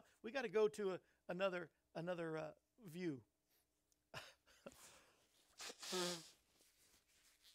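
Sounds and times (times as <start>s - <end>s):
speech: 0.2s - 3.3s, 5.9s - 6.3s
person sneezing on a TV broadcast: 5.6s - 6.4s.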